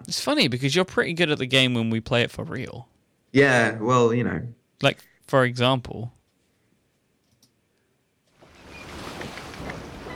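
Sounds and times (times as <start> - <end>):
speech: 0.1 - 6.2
water sloshing and waves washing against a boat: 8.4 - 10.1.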